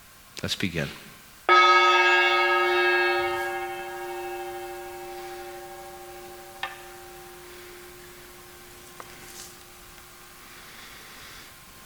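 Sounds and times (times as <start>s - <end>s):
speech: 0.4s - 1.1s
chime struck to begin silent meditation: 1.5s - 10.3s.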